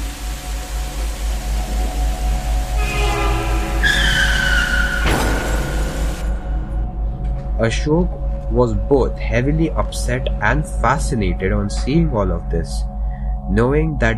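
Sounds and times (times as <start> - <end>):
sharp burst of noise: 0.0 - 6.8
truck horn blaring: 2.7 - 6.6
speech: 7.6 - 12.9, 13.5 - 14.1.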